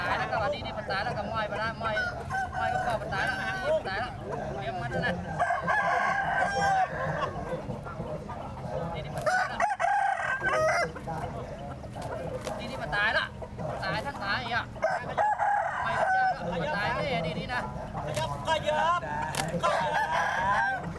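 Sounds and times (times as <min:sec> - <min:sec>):
cockfight in Chiang Mai: 0:00.0 - 0:20.9.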